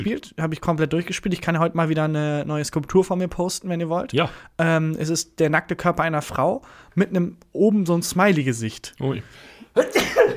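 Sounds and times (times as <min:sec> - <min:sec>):
speech: 0:00.0 - 0:10.3
person sneezing: 0:09.8 - 0:10.3.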